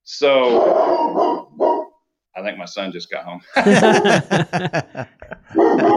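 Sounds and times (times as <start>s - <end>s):
speech: 0.1s - 1.6s, 2.4s - 5.9s
dog barking: 0.4s - 2.0s, 3.8s - 4.2s, 5.5s - 5.9s
laughter: 3.5s - 5.9s.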